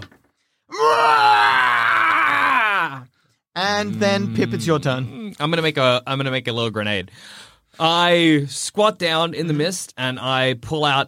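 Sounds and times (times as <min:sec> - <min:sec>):
person voicing a fleeing creature's scream: 0:00.7 - 0:03.0
speech: 0:03.8 - 0:11.0.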